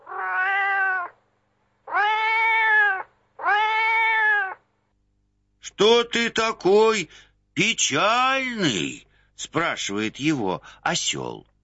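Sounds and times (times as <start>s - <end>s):
sad cat sitting on a road meowing: 0.0s - 1.2s, 1.9s - 4.6s
speech: 5.8s - 11.5s.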